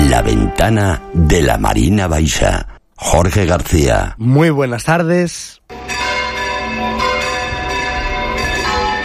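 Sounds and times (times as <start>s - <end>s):
speech: 0.2s - 5.8s
17th-century church bells pealing in full swing for festivities: 5.7s - 9.0s.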